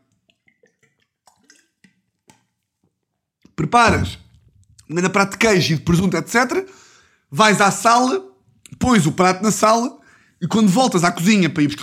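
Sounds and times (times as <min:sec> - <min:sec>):
sipping water: 0:00.0 - 0:02.5
soft swallowing clicks: 0:00.1 - 0:02.5
speech: 0:03.6 - 0:04.2, 0:04.9 - 0:11.8.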